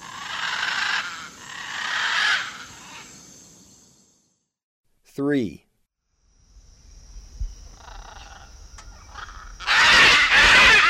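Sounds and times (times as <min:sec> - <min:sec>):
blue-and-yellow macaw raspy squawks in the eastern lowlands of South America: 0:00.0 - 0:03.1, 0:07.8 - 0:10.8
speech: 0:05.2 - 0:05.6.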